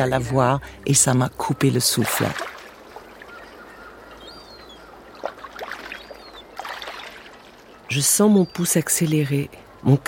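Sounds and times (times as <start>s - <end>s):
speech: 0.0s - 2.6s, 7.9s - 10.0s
faint high bird chirps: 0.0s - 10.0s
kayak paddles dipping and splashing on water: 1.9s - 7.9s.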